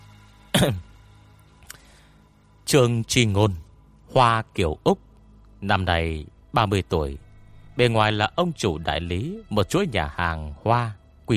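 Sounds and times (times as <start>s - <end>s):
person clearing throat: 0.5s - 0.8s
speech: 0.6s - 0.9s, 2.7s - 7.2s, 7.8s - 11.3s.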